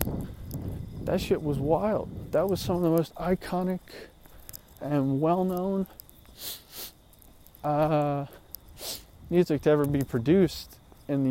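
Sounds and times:
speech: 1.1s - 4.1s, 4.8s - 7.0s, 7.6s - 11.2s
person sniffling: 6.4s - 7.0s, 8.8s - 9.1s.

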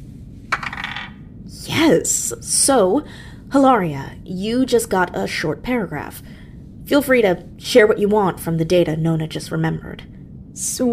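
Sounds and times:
real dice clattering onto a hard tabletop: 0.5s - 1.1s
speech: 1.6s - 6.3s, 6.9s - 10.9s.

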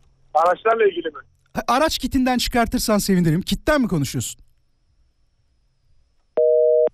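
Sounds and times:
speech: 0.4s - 4.4s
telephone busy signal beep after a caller hangs up on a phone-in call: 6.4s - 6.9s.

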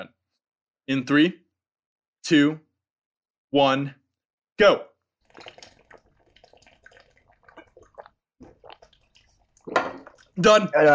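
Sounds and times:
speech: 0.9s - 1.4s, 2.2s - 2.6s, 3.5s - 4.0s, 4.6s - 5.5s, 10.4s - 10.9s
water sloshing and gurgling in bottles: 5.1s - 10.9s.

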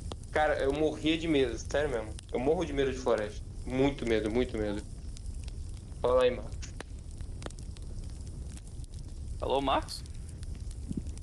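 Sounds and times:
campfire crackling with pops and snaps: 0.0s - 11.2s
speech: 0.4s - 4.9s, 6.0s - 6.6s, 9.4s - 10.1s.

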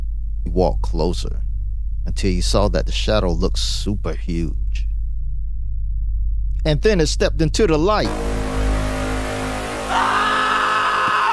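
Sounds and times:
low rumbling hum: 0.0s - 10.8s
speech: 0.4s - 4.9s, 6.6s - 8.3s
man screaming in fright: 9.9s - 11.3s.

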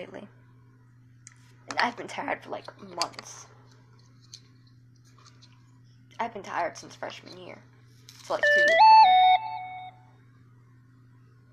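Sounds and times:
speech: 0.0s - 0.4s, 1.7s - 3.5s, 6.2s - 7.7s, 8.3s - 9.1s
faint steady low hum: 0.0s - 11.5s
bright electronic notification beep from a phone: 8.4s - 9.9s.

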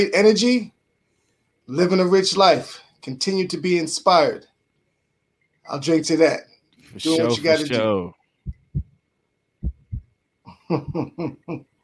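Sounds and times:
speech: 0.0s - 0.8s, 1.7s - 4.5s, 5.7s - 8.6s, 10.7s - 11.7s
brief burst of voice: 6.9s - 8.1s
heartbeat sound effect: 8.4s - 9.0s, 9.6s - 11.2s
chuckling vocal bursts: 10.5s - 11.7s.

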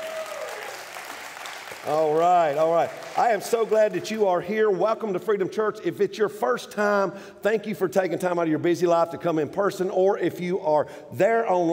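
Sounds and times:
church audience clapping hands during a service: 0.0s - 4.4s
speech: 1.8s - 11.7s.

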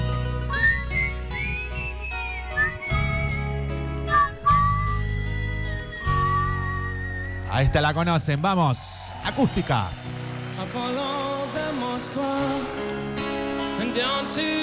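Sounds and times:
music with full low-end accompaniment: 0.0s - 14.6s
person whistling a tune with gliding notes: 0.2s - 7.8s
speech: 7.6s - 10.0s, 10.6s - 13.2s, 14.0s - 14.6s.

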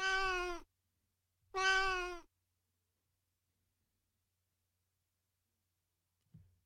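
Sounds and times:
cat meowing: 0.0s - 0.7s, 1.5s - 2.3s.

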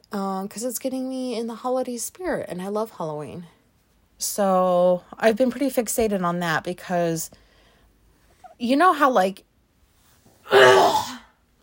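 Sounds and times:
speech: 0.1s - 3.6s, 4.2s - 7.4s, 8.6s - 9.5s
person clearing throat with something caught in it: 10.5s - 11.3s.

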